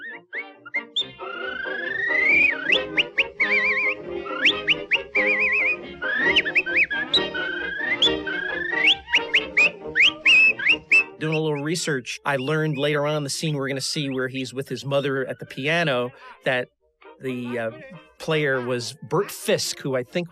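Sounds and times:
person whistling a lively meandering tune: 0.0 - 13.0
speech: 11.7 - 20.2.

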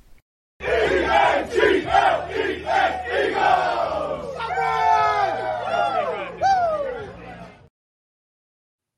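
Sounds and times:
big crowd roaring and chanting in unison: 0.6 - 6.4
crowd whooping and cheering: 2.8 - 7.6.

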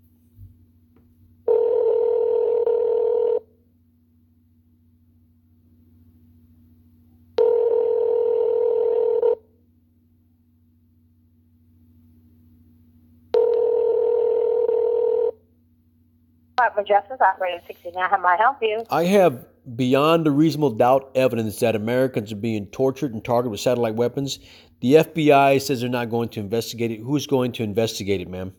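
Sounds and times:
faint low hum: 0.0 - 28.5
telephone line tones while a call is transferred: 1.5 - 3.4, 7.4 - 9.4, 13.3 - 15.4
speech: 16.6 - 28.5.

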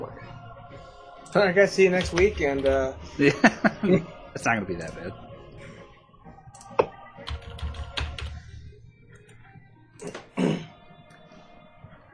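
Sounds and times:
speech: 1.3 - 5.2
computer keyboard clicking while being typed on: 2.0 - 2.9, 6.5 - 8.5
laughter: 2.0 - 4.3.

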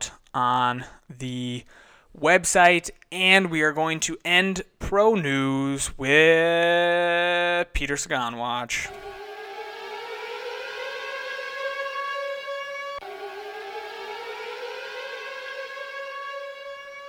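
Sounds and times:
speech: 0.4 - 9.1
loud steady siren wailing: 8.8 - 17.0.

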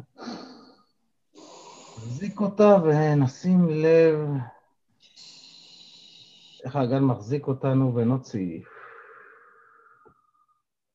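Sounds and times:
deep breath in during a seated breathing exercise: 1.4 - 2.2, 5.0 - 6.6, 8.6 - 10.6
speech: 2.0 - 4.6, 6.6 - 8.8.

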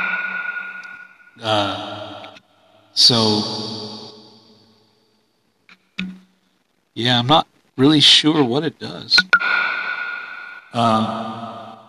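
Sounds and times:
voice humming through a microphone with voice-changer echo effect: 0.0 - 4.7, 8.0 - 11.8
speech: 1.4 - 1.9, 3.0 - 3.7, 7.0 - 9.3, 10.8 - 11.4.

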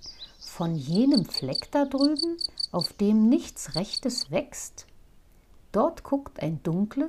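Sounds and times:
speech: 0.6 - 4.9, 5.7 - 7.0
high-pitched cricket trill: 1.1 - 2.8.

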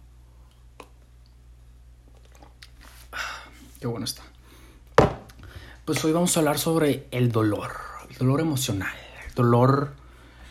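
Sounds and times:
person sipping coffee with soft wet clicks and gulp: 2.1 - 3.8
speech: 3.8 - 4.4, 5.9 - 10.0.

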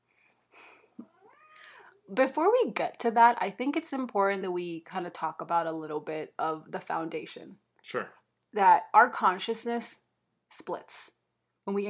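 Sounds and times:
cat meowing faintly from a distance: 1.1 - 1.8
speech: 2.1 - 11.8.

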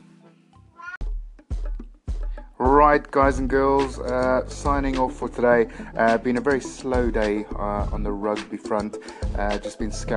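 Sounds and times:
cat giving a drawn-out rising meow: 0.7 - 1.0
speech: 2.6 - 10.1.

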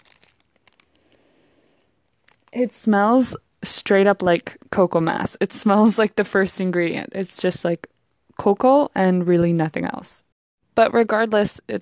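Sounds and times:
chocolate bar paper wrapper and aluminum foil crinkling and rustling: 0.0 - 2.6
speech: 2.5 - 10.2, 10.8 - 11.7.

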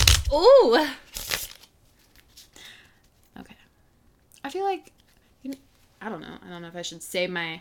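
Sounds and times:
deck of tarot cards being shuffled: 0.0 - 0.5, 1.1 - 2.6
speech: 0.3 - 1.0, 4.4 - 7.6.

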